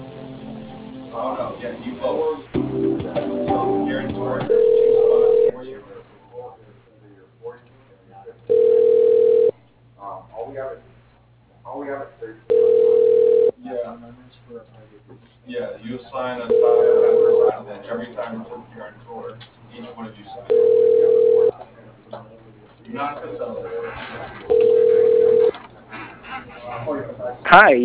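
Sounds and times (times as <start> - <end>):
speech: 1.2 - 3.3
voices on a phone line: 3.6 - 10.9, 11.6 - 27.8
telephone beeps while a call is transferred to voicemail: 4.5 - 5.6, 8.5 - 9.5, 12.5 - 13.5, 16.5 - 17.5, 20.5 - 21.5, 24.5 - 25.6.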